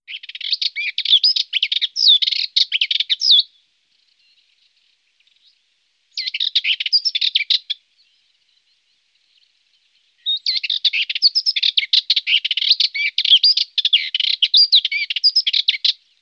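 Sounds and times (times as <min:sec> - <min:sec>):
Dartford warbler calling: 0:00.1 - 0:16.2.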